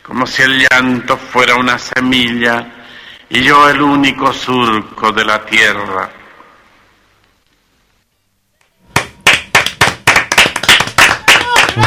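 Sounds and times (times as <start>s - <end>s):
speech: 0.1s - 6.2s
audience applause after a poetry recitation: 9.0s - 11.8s.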